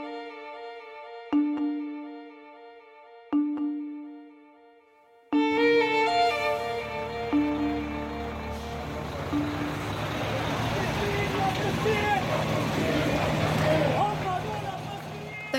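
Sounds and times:
short musical jingle of sustained tones: 1.2 - 4.7, 5.3 - 10.9
low rumble of aid trucks: 5.4 - 15.5.

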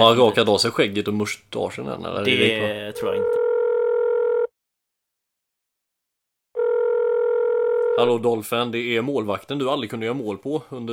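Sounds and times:
speech: 0.0 - 3.4, 8.0 - 10.9
telephone ringing tone while calling: 3.0 - 4.5, 6.6 - 8.1.

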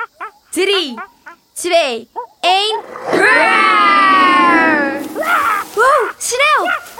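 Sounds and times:
speech: 0.0 - 3.8, 5.8 - 6.8
group of children roaring in imitation of a lion or tiger: 2.6 - 6.9
shout: 3.1 - 6.8.

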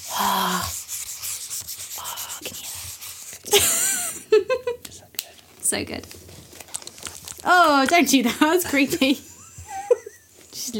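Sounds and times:
glittery metallic pen writing on a balloon: 0.0 - 3.6
speech: 5.7 - 6.2, 7.4 - 9.3.

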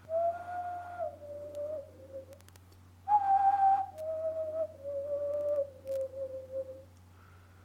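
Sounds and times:
person whistling: 0.0 - 2.3, 3.1 - 6.9
steady low hum: 0.0 - 7.6.

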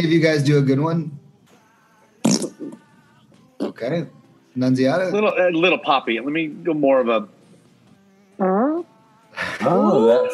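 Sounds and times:
speech: 0.0 - 1.2, 3.8 - 7.4, 8.4 - 8.9, 9.6 - 10.3
person imitating a fart with mouth raspberry: 2.2 - 2.8.

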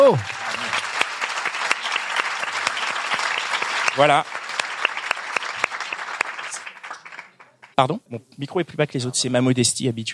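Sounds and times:
speech: 0.0 - 0.4, 4.0 - 4.3, 7.8 - 10.1
room full of people applauding: 0.0 - 7.7.

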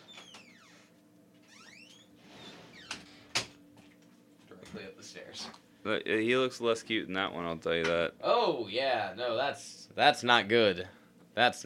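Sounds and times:
door squeaking open: 0.0 - 3.5
speech: 4.7 - 11.6.

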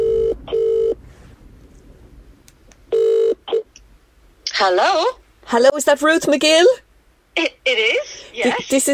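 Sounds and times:
telephone double ringing tone heard down the line: 0.0 - 1.0, 2.9 - 3.6
speech: 4.6 - 6.8, 7.4 - 8.9.

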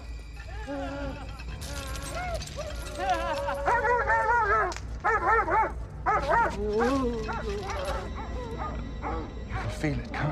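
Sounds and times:
speech: 0.7 - 1.3, 6.3 - 8.1, 9.8 - 10.2
high yelping dog barks: 2.8 - 9.7.

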